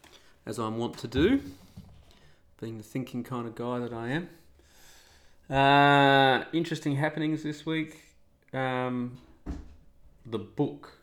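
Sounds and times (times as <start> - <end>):
speech: 0.5 - 1.6, 2.6 - 4.4, 5.5 - 9.6, 10.3 - 11.0
cat jumping down from a high chair landing with a thump: 9.4 - 9.8.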